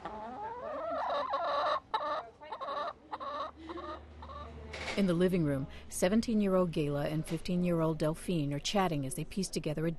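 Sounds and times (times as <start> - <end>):
backyard chickens clucking: 0.0 - 4.6
speech: 5.0 - 9.9.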